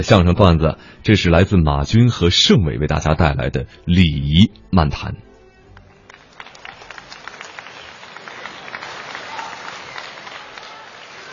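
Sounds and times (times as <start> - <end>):
speech: 0.0 - 5.3
crowd applauding a crosstalk comedy performance: 5.8 - 11.3.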